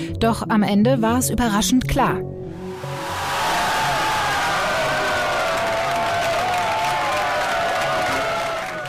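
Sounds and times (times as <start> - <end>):
speech: 0.2 - 2.5
large crowd cheering in a packed hall at an election night party: 2.8 - 8.8.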